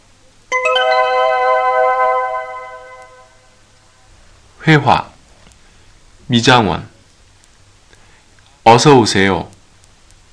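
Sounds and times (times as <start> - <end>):
bright electronic phone ringtone chime: 0.5 - 3.6
speech: 4.6 - 5.1, 6.3 - 6.9, 8.7 - 9.5.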